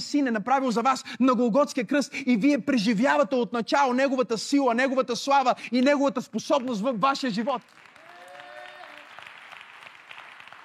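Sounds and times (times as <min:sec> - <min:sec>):
speech: 0:00.0 - 0:07.8
crowd applauding: 0:07.6 - 0:10.6.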